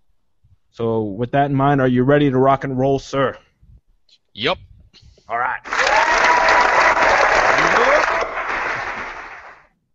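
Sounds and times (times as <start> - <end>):
speech: 0.8 - 3.4, 4.1 - 4.7, 5.3 - 5.9
crowd applause: 5.6 - 9.7.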